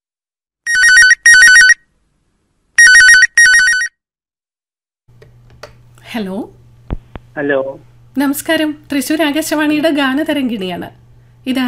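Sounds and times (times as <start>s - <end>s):
telephone ringing as a caller is connected to a radio phone-in line: 0.7s - 1.8s, 2.8s - 4.0s
speech: 6.1s - 6.6s, 7.4s - 11.6s.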